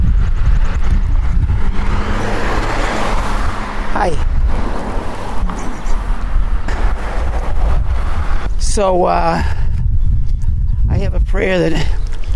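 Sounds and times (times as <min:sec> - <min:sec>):
traffic passing: 0:00.0 - 0:09.1
steady wind buffeting the microphone outdoors: 0:00.0 - 0:12.3
speech: 0:08.8 - 0:09.6, 0:11.4 - 0:12.0.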